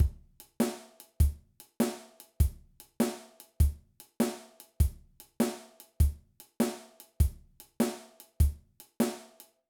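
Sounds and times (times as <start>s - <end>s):
shuffle drum groove: 0.0s - 9.6s.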